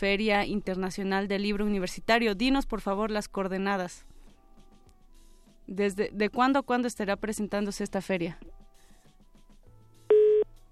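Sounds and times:
speech: 0:00.0 - 0:04.1, 0:05.7 - 0:08.6
telephone line tone after a call cuts off: 0:10.1 - 0:10.6.

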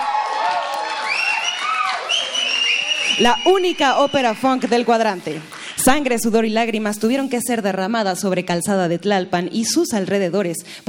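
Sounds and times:
whooping cheers from a crowd: 0:00.0 - 0:04.6
crowd applauding a funk opera premiere: 0:00.0 - 0:05.8
high whistles from a crowd: 0:01.0 - 0:04.5
speech: 0:03.2 - 0:10.8.

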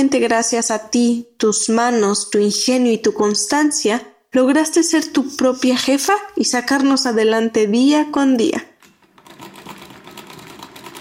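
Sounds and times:
speech: 0:00.0 - 0:08.7
sewing machine stitching as a woman sews bags: 0:08.8 - 0:10.9.

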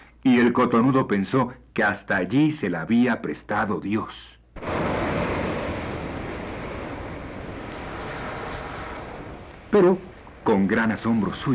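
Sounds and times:
speech: 0:00.2 - 0:04.8, 0:09.7 - 0:11.5
strong river current rushing: 0:04.6 - 0:11.5.

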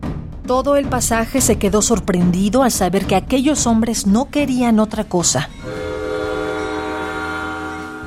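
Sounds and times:
speech: 0:00.5 - 0:05.8
sustained train horn-like tonal blast: 0:05.6 - 0:08.0.

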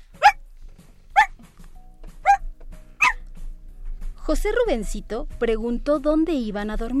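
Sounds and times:
dog barking: 0:00.2 - 0:00.4, 0:01.1 - 0:01.4, 0:02.2 - 0:02.4, 0:03.0 - 0:03.2
speech: 0:04.3 - 0:06.9.

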